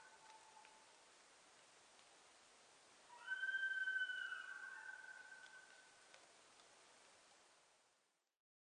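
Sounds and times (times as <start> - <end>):
quiet hiss: 0.0 - 8.4
Japanese sika deer giving a long high clear whistle: 3.1 - 5.8.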